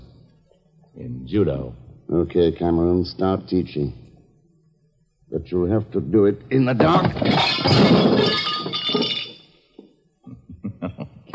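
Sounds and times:
speech: 1.0 - 4.0, 5.3 - 9.1
glass shattering: 6.6 - 9.6
lamp smashing: 6.8 - 9.5
falling glass shards clinking: 6.8 - 9.6
laughter: 10.3 - 11.3.

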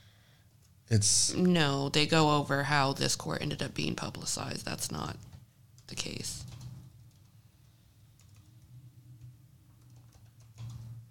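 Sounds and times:
steady low hum: 0.0 - 11.0
speech: 0.9 - 5.3, 5.9 - 6.5
typing on a curved ergonomic computer keyboard: 5.2 - 7.4, 8.2 - 11.0.

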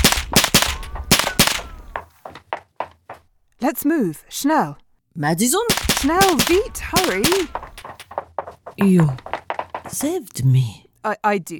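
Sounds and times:
gunfire laid down as cover fire during a street shootout: 0.0 - 2.0, 5.7 - 7.8
speech: 3.6 - 7.6, 8.8 - 9.3, 9.9 - 11.5.

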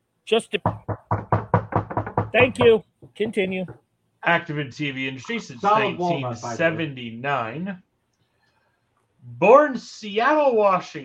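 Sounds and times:
speech: 0.3 - 1.1, 2.3 - 7.8, 9.3 - 11.0
knuckles knocking on wood: 0.6 - 3.9.

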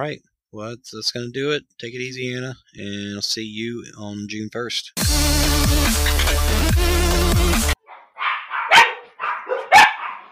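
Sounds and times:
speech: 0.0 - 7.7
loud music: 5.0 - 7.8
dog giving sharp yelping barks: 7.8 - 10.3.

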